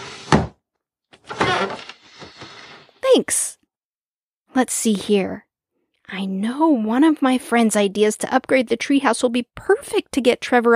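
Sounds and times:
desk being scooted across the floor: 0:00.0 - 0:00.6, 0:01.3 - 0:03.0
heavy desk thunk on the floor: 0:00.2 - 0:00.6
speech: 0:03.2 - 0:03.6, 0:04.6 - 0:05.5, 0:06.1 - 0:10.7.

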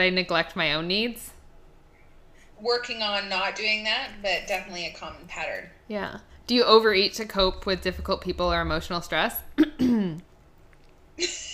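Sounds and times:
speech: 0:00.0 - 0:01.3, 0:02.6 - 0:10.3, 0:11.2 - 0:11.4
throat clearing: 0:09.6 - 0:10.2.

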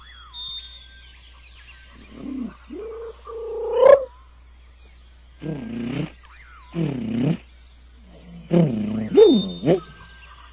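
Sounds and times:
low throaty pigeon coos: 0:02.1 - 0:04.1, 0:05.4 - 0:06.2, 0:06.8 - 0:07.4, 0:08.1 - 0:10.1
speech: 0:05.4 - 0:05.8
thin high whistling tones: 0:08.6 - 0:10.0.

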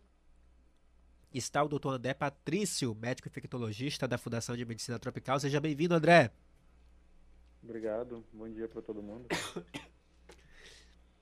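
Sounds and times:
speech: 0:01.3 - 0:06.5, 0:07.6 - 0:09.9
person coughing: 0:09.3 - 0:10.0.

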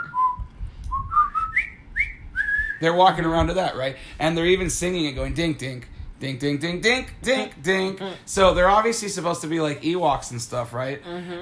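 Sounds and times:
person whistling a short melodic tune: 0:00.0 - 0:02.8
low rumble: 0:00.0 - 0:11.4
speech: 0:02.8 - 0:11.4.

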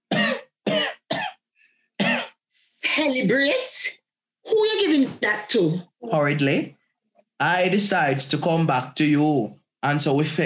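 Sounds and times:
harsh rasping barking coughs: 0:00.0 - 0:01.4, 0:02.0 - 0:02.4
speech: 0:03.0 - 0:06.8, 0:07.4 - 0:10.4.

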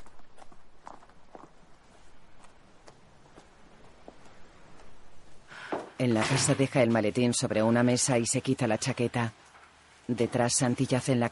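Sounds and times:
footsteps of someone walking from a minivan toward a house: 0:00.0 - 0:06.6
speech: 0:06.0 - 0:09.4, 0:10.1 - 0:11.3.

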